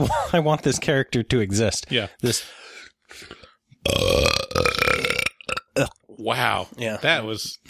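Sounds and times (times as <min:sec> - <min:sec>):
speech: 0:00.0 - 0:04.4, 0:05.8 - 0:07.6
soft throaty sounds: 0:02.0 - 0:06.7
long loud drawn-out belch: 0:03.8 - 0:06.0.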